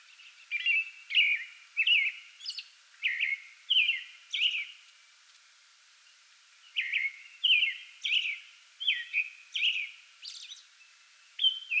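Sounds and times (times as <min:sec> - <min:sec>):
American robin singing before dawn from a small tree in a front yard: 0:00.0 - 0:04.8, 0:06.6 - 0:11.7.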